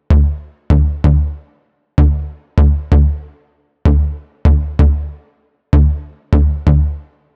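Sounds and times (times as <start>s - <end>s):
bass root note D: 0.1s - 1.4s, 2.0s - 3.2s, 3.9s - 5.1s, 5.8s - 7.0s.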